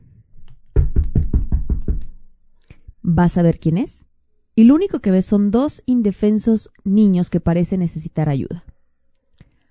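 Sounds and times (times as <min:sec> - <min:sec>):
firm knocks on a front door: 0:00.7 - 0:02.1
speech: 0:03.1 - 0:08.7.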